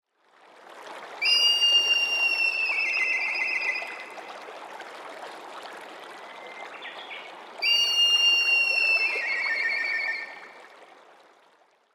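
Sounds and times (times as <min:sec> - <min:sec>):
high tobi fue whistle: 0:01.2 - 0:04.2, 0:07.6 - 0:10.5.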